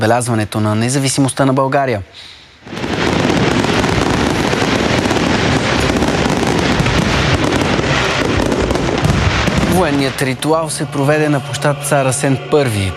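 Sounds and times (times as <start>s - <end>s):
speech: 0.0s - 3.0s, 9.8s - 12.9s
barrage of fireworks at a ceremonial military evening tattoo in Veliko Tarnovo Bulgaria: 2.6s - 12.0s.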